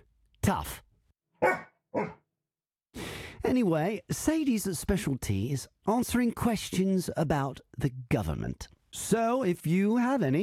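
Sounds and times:
speech: 0.5s - 0.8s, 3.5s - 10.4s
dog barking: 1.4s - 2.2s.

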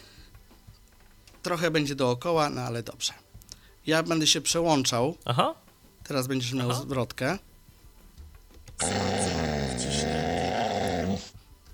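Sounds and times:
speech: 1.4s - 3.2s, 3.9s - 7.5s
dog growling: 8.8s - 11.3s.

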